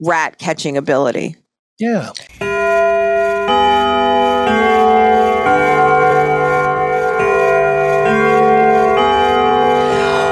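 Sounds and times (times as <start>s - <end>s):
speech: 0.0s - 2.5s
bell ringing: 2.4s - 10.3s.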